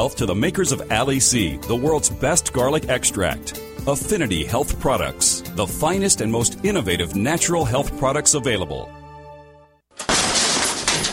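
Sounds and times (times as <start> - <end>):
speech: 0.0 - 9.0
door being kicked in by intruder: 10.0 - 11.1.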